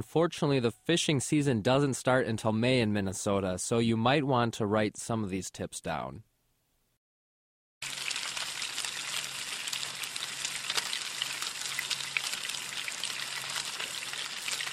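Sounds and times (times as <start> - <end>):
speech: 0.0 - 6.3
fish sizzling in a hot cast-iron pan: 7.8 - 14.7.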